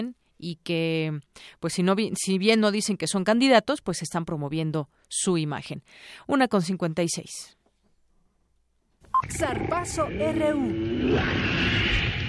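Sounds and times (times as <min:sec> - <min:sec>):
speech: 0:00.0 - 0:07.6, 0:09.2 - 0:12.1
big cat roar sound effect: 0:09.2 - 0:11.9.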